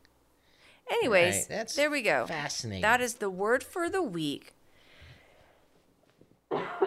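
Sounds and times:
quiet breathing: 0:00.3 - 0:00.9, 0:04.6 - 0:06.0
speech: 0:00.9 - 0:04.6
person coughing: 0:06.5 - 0:06.8.

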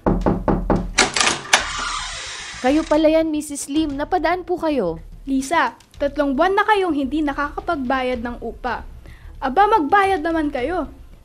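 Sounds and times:
firm knocks on a house door: 0:00.0 - 0:01.0
house door being opened with a clatter: 0:00.8 - 0:03.0
speech: 0:02.6 - 0:11.0.

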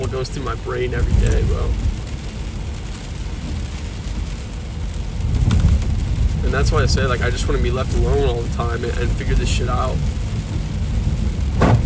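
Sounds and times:
heavy rain drumming on a car driving on a waterlogged road: 0:00.0 - 0:11.8
speech: 0:00.1 - 0:02.0, 0:06.4 - 0:10.2.

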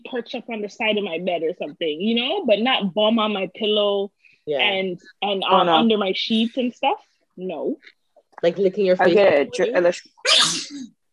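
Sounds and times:
speech: 0:00.1 - 0:11.0
sneeze: 0:10.2 - 0:10.9.

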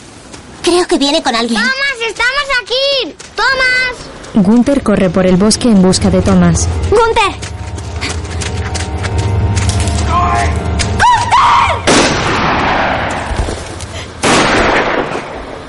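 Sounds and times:
dense noisy background: 0:00.0 - 0:15.6
speech: 0:00.6 - 0:07.5
gunshots fired from among trees in a forest: 0:11.8 - 0:13.4, 0:14.2 - 0:15.6.

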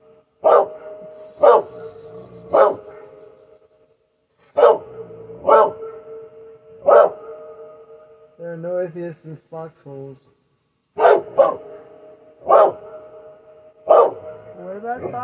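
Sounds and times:
dog barking: 0:00.4 - 0:03.2, 0:04.5 - 0:06.0, 0:06.8 - 0:07.4, 0:11.0 - 0:13.0, 0:13.8 - 0:14.4
speech: 0:08.9 - 0:10.4, 0:14.9 - 0:15.2.

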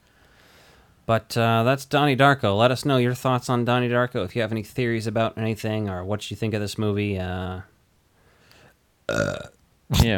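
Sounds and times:
speech: 0:01.1 - 0:07.7, 0:09.1 - 0:10.1
person burping: 0:09.1 - 0:10.1.

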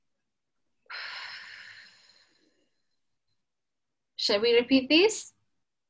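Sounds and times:
long airy exhale after a held deep breath during a breathing exercise: 0:00.9 - 0:02.6
speech: 0:04.3 - 0:05.4.

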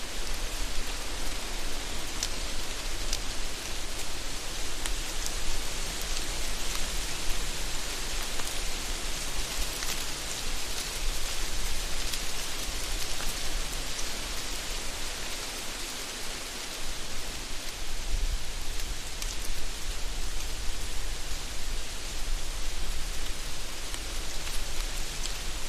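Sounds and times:
wind rushing through crinkly autumn leaves: 0:00.0 - 0:25.6.

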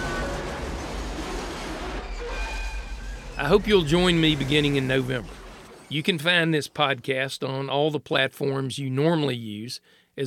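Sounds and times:
train rumbling along railroad tracks: 0:00.0 - 0:04.5
faint high metallic whines of train: 0:00.0 - 0:05.9
speech: 0:03.4 - 0:10.2.

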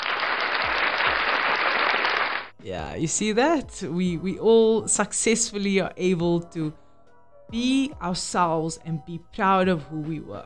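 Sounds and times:
dense applause from many hands: 0:00.0 - 0:02.6
speech: 0:02.6 - 0:06.8, 0:07.5 - 0:10.4.

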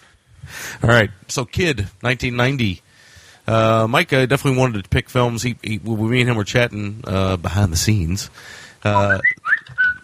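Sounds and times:
speech: 0:00.8 - 0:02.8, 0:03.5 - 0:09.5
buzzy reedy tone: 0:08.9 - 0:10.0
whistled melody: 0:09.0 - 0:10.0.

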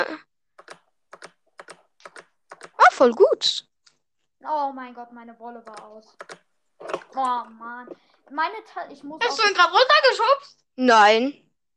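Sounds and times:
typing on a computer keyboard: 0:00.6 - 0:02.9, 0:05.6 - 0:06.5
speech: 0:03.0 - 0:03.7, 0:04.4 - 0:06.4, 0:07.2 - 0:11.4.

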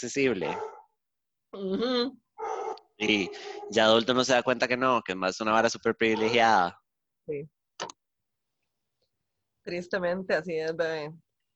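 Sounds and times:
speech: 0:00.0 - 0:00.7, 0:01.5 - 0:02.2, 0:03.0 - 0:08.0, 0:09.6 - 0:11.3
small dog barking: 0:00.4 - 0:00.9, 0:02.4 - 0:03.8.

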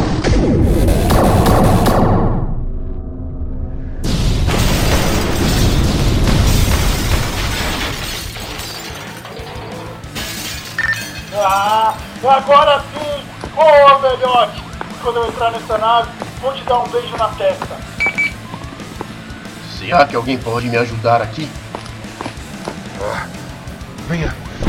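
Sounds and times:
roaring explosion: 0:00.0 - 0:08.0
weapon blast fired at locked targets: 0:00.0 - 0:08.4
crackling, shattering debris rumbling: 0:04.1 - 0:12.2
speech: 0:13.6 - 0:17.9, 0:19.8 - 0:21.6, 0:23.0 - 0:23.4, 0:24.1 - 0:24.6.

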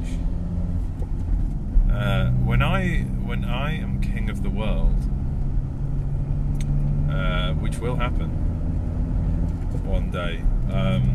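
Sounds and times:
low engine rumble inside a moving car: 0:00.0 - 0:11.1
speech: 0:07.7 - 0:08.5, 0:09.8 - 0:11.1.

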